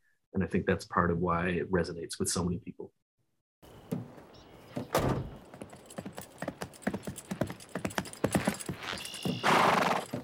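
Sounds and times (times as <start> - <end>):
speech: 0.4 - 3.0
horse hooves clip-clopping: 4.7 - 10.2
short high horse whinny: 8.7 - 10.2.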